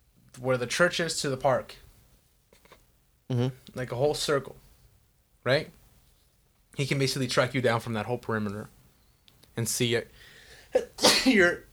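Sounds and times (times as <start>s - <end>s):
speech: 0.4s - 1.8s, 3.3s - 4.6s, 5.4s - 5.8s, 6.8s - 8.8s, 9.6s - 11.7s
person sneezing: 10.6s - 11.6s.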